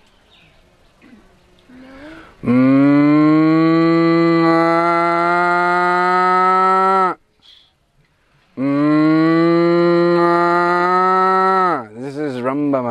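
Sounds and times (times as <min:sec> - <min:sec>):
cow mooing with a deep bellowing tone: 0:02.4 - 0:07.2, 0:08.6 - 0:11.9.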